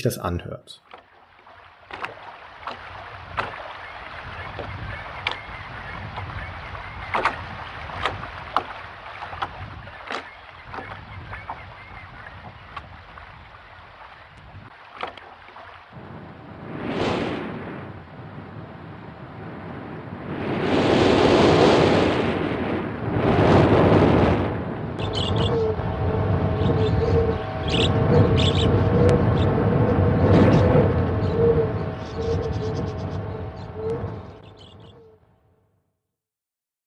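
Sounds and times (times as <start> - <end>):
speech: 0.0 - 1.0
water lapping and sloshing against a harbor wall: 0.8 - 16.0
steady wind rushing across the microphone at a harbor quay: 2.9 - 13.7, 14.3 - 14.8, 15.9 - 35.0.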